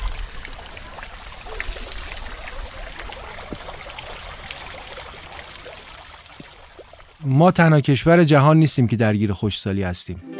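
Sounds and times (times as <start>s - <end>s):
water trickling and pouring: 0.0s - 8.0s
speech: 7.2s - 10.3s.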